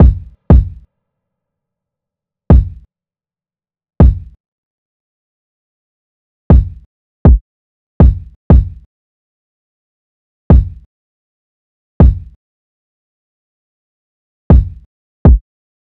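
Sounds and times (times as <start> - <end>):
kick drum loop at 120 BPM: 0.0 - 0.8, 2.5 - 2.8, 4.0 - 4.4, 6.5 - 7.4, 8.0 - 8.8, 10.5 - 10.8, 12.0 - 12.3, 14.5 - 15.4.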